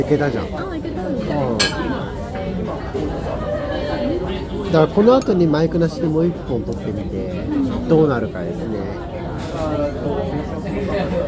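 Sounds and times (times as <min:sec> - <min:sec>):
speech: 0:00.0 - 0:03.4, 0:04.7 - 0:11.2
overlapping chatter of many voices in a busy izakaya: 0:00.0 - 0:11.2
dishes and glasses clinking in an izakaya: 0:01.5 - 0:02.0.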